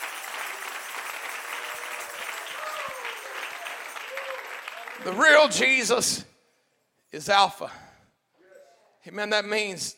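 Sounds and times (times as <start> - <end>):
audience clapping hands: 0.0 - 5.7
speech: 5.0 - 6.3, 7.1 - 7.8, 9.0 - 9.9.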